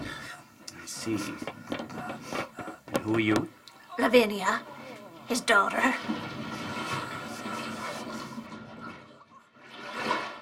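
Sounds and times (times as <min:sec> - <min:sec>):
speech: 0:01.0 - 0:02.4, 0:03.0 - 0:04.7, 0:05.3 - 0:06.3
rushing water: 0:04.0 - 0:10.4.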